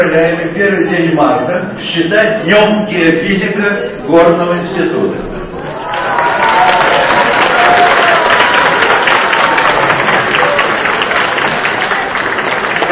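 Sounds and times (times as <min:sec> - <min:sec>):
speech: 0:00.0 - 0:06.8
large audience applauding: 0:05.7 - 0:12.8.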